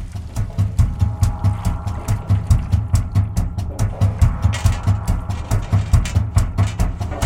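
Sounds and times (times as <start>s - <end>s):
deep droning hum: 0.0s - 7.2s
looping mechanical thumps from household washing machine sounds made into music: 0.0s - 7.2s
rattling clicks: 4.2s - 7.2s.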